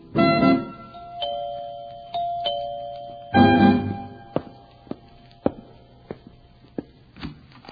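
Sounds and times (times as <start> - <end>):
doorbell ding-dong chime rung by trick-or-treaters: 0.4 - 4.4.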